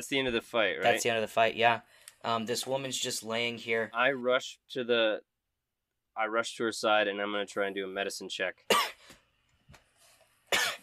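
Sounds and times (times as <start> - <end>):
speech: 0.0 - 5.3, 6.2 - 9.2
voice acting out a woman's coughing and gasping for air: 8.7 - 9.1, 10.5 - 10.8.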